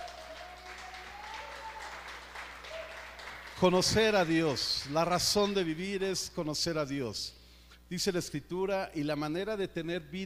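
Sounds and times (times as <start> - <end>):
audience applauding after a prayer: 0.0 - 5.2
speech: 3.6 - 10.2.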